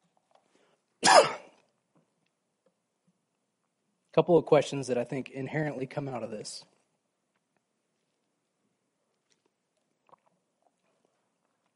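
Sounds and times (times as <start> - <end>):
cough and throat clearing: 1.0 - 1.6
speech: 4.2 - 6.8.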